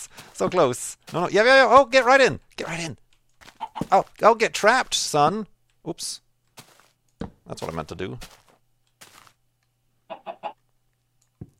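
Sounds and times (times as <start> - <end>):
speech: 0.0 - 3.0, 3.8 - 6.2, 7.2 - 8.4
chickens clucking: 3.5 - 4.0, 10.1 - 10.6.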